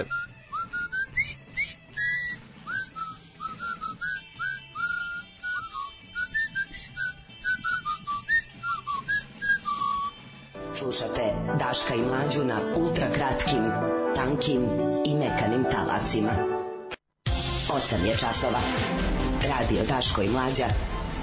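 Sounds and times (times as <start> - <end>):
speech: 0.0 - 0.3, 10.9 - 16.6, 17.8 - 20.9
person whistling a tune: 0.0 - 10.2.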